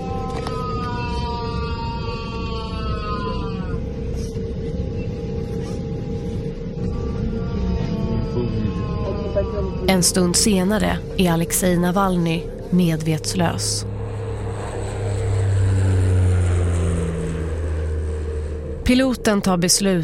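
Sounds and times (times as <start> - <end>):
man howling in agony from the toilet of a passenger plane: 0.0 - 3.9, 7.4 - 10.0
loud steady rumble of a passenger airplane cabin: 0.0 - 20.0
speech: 9.9 - 13.9, 18.9 - 20.0.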